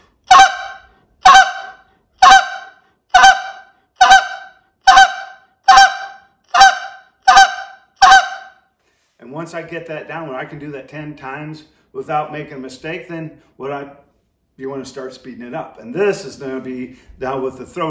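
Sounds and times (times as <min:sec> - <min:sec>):
goose clucks blown on a handheld goose call practising the spit note: 0:00.3 - 0:08.5
speech: 0:09.3 - 0:14.0, 0:14.6 - 0:17.8.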